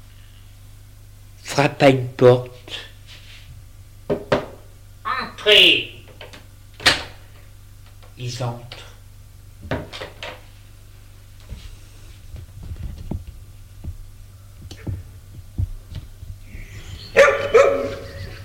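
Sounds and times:
steady low hum: 0.0 - 18.4
speech: 1.6 - 2.9, 5.4 - 5.9, 8.2 - 8.8
two large dogs barking: 17.2 - 18.3.

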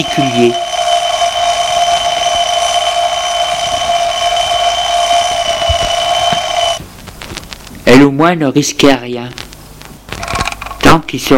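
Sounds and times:
speech: 0.0 - 0.6, 7.9 - 9.4, 11.1 - 11.3
alarm clock ringing with a metallic bell-like tone: 0.0 - 6.8.

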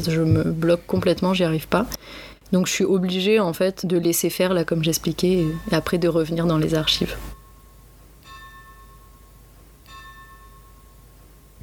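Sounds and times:
speech: 0.0 - 7.3
church bell tolling: 5.4 - 11.6.

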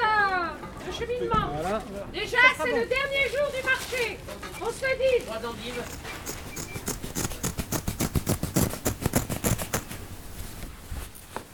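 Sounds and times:
speech: 1.0 - 6.4
scissors snipping: 5.6 - 10.2.

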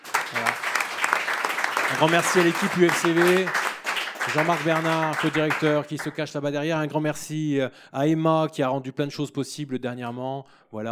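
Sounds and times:
audience applauding the technical team at the end of a radio broadcast: 0.0 - 6.2
speech: 1.9 - 10.8.

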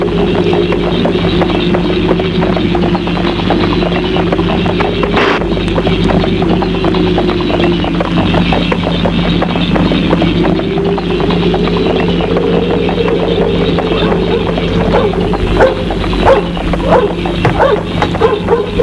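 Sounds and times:
constant rumble: 0.0 - 18.8
galloping horse hoofbeats being ridden at night: 0.0 - 18.8
dog barking at a farm at night: 14.3 - 18.8.

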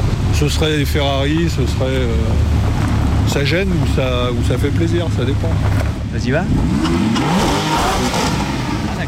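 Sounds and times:
speech: 0.4 - 2.6, 3.3 - 8.4
Porsche 991 GTS sports car engine revving: 2.0 - 9.0.

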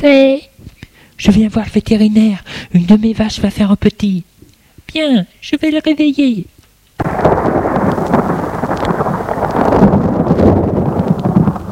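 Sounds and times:
speech: 0.0 - 0.5, 1.2 - 4.3, 4.9 - 7.3
deep thunder rumble: 7.0 - 11.7
rain roaring in a late-night thunderstorm: 7.0 - 11.7.

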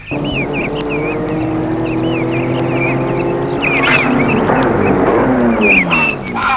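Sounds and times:
BMW car engine humming on a mountain road: 0.0 - 6.5
birds chirping: 0.0 - 6.5.

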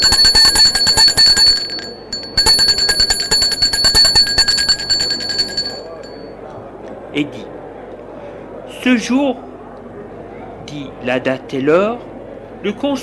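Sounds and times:
handbell rung rapidly: 0.0 - 6.3
speech: 7.2 - 7.4, 8.8 - 9.5, 10.8 - 13.0.

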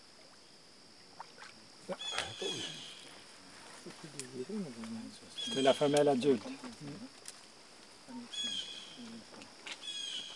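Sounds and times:
speech: 1.9 - 2.9, 3.8 - 7.2, 8.1 - 9.7
blue jay calling: 2.0 - 3.1, 5.4 - 6.0, 8.3 - 9.0, 9.8 - 10.3.

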